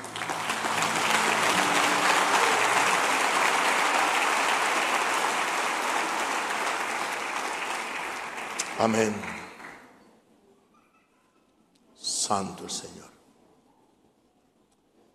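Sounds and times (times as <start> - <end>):
crowd applauding in a reverberant room: 0.0 - 10.0
speech: 8.8 - 9.4, 12.3 - 13.2.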